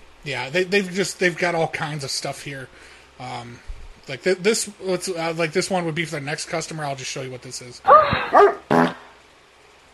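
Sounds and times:
speech: 0:00.2 - 0:08.6
dog barking: 0:07.9 - 0:08.7.

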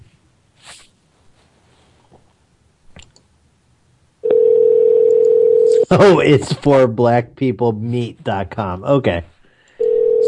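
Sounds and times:
telephone line tone for an invalid phone number: 0:04.2 - 0:05.9, 0:09.7 - 0:10.2
speech: 0:05.9 - 0:09.3.

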